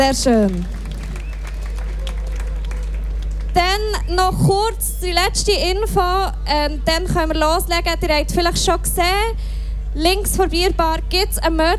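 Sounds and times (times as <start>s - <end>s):
speech: 0.0s - 0.8s, 3.8s - 11.7s
audience applauding at a concert event: 0.2s - 4.2s.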